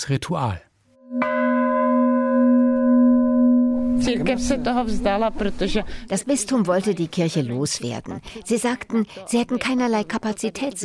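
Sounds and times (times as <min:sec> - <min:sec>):
speech: 0:00.0 - 0:01.3, 0:04.0 - 0:10.8
church bell struck by hand: 0:01.0 - 0:06.2.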